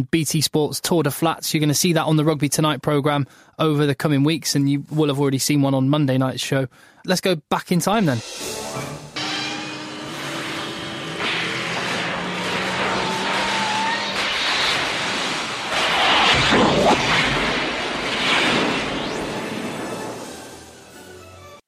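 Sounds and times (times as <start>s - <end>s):
speech: 0.0s - 9.0s
Land Rover engine running: 9.2s - 15.7s
rumbling road noise: 9.9s - 21.0s.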